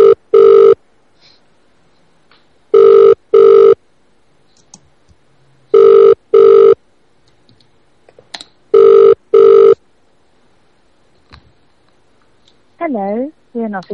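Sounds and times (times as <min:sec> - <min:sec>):
ringback tone of an outgoing phone call: 0:00.0 - 0:00.8, 0:02.7 - 0:03.8, 0:05.7 - 0:06.8, 0:08.7 - 0:09.8
speech: 0:12.9 - 0:13.9.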